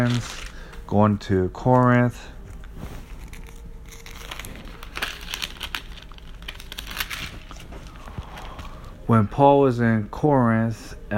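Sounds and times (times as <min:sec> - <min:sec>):
thin Bible pages being flipped: 0:00.0 - 0:00.6, 0:02.5 - 0:08.8
speech: 0:00.0 - 0:02.9, 0:09.1 - 0:11.1.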